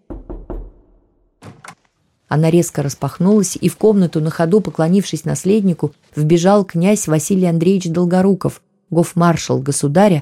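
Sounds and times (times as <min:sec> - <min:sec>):
knocking on a wooden door: 0:00.0 - 0:01.7
speech: 0:02.3 - 0:10.2.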